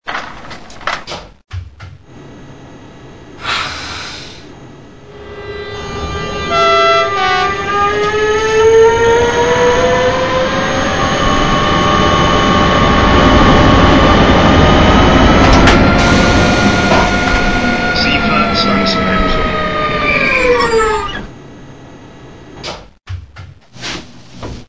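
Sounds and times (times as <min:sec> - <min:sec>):
DB BR185 SBB Re482 BLS Re485 electric locomotives: 0:05.0 - 0:21.4.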